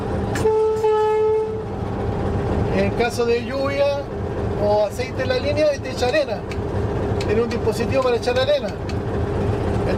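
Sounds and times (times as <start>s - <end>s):
locomotive engine idling drone: 0.0s - 9.9s
locomotive horn: 0.3s - 1.8s
speech: 2.8s - 6.6s, 7.3s - 9.2s.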